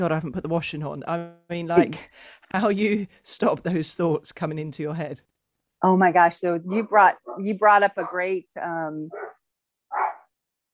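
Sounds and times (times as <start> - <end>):
speech: 0.0 - 9.2
dog barking while heading out for a walk: 9.1 - 9.3, 9.9 - 10.2.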